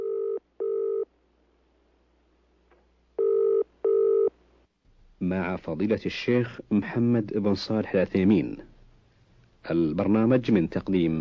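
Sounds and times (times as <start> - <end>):
telephone ringing with a steady electronic purr: 0.0 - 1.1, 3.2 - 4.3
speech: 5.3 - 8.7, 9.6 - 11.1.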